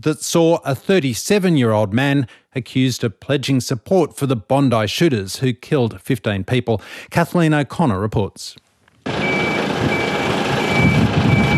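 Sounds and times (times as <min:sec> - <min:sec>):
speech: 0:00.0 - 0:09.2
fire truck reversing alarm beeping: 0:09.1 - 0:11.5.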